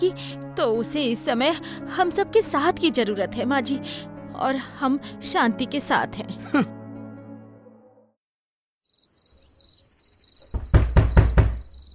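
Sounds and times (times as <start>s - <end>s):
speech: 0.0s - 6.8s
crickets chirping: 8.8s - 11.9s
knocking on a house door: 10.4s - 11.8s.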